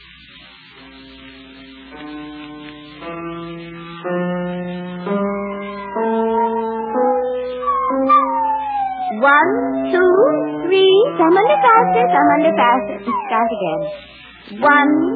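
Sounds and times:
piano playing: 1.8s - 15.1s
speech: 4.0s - 4.2s, 9.2s - 15.1s
spaniel howling along with a piano: 5.8s - 14.1s.

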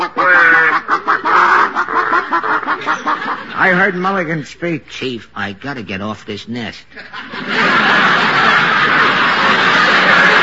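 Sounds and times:
people imitating chickens clucking: 0.0s - 3.6s
laughter: 0.0s - 4.0s, 6.8s - 10.4s
speech: 3.6s - 8.3s.

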